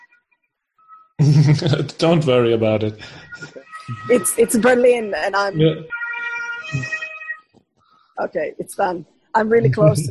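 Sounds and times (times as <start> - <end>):
faint noise: 0.0 - 10.1
laughter: 1.2 - 4.8
speech: 1.2 - 6.0, 6.7 - 7.0, 8.2 - 10.1
ambulance siren on a city street: 3.2 - 7.5.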